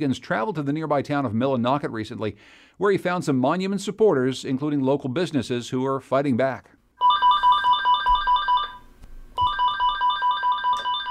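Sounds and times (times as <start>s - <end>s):
speech: 0.0s - 6.8s
office telephone ringing with a rapid electronic warble: 7.0s - 11.0s.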